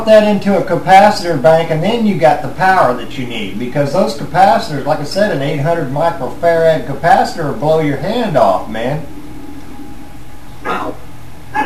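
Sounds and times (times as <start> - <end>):
speech: 0.0 - 9.1
low steady hum: 0.0 - 11.6
dog barking: 10.7 - 11.6.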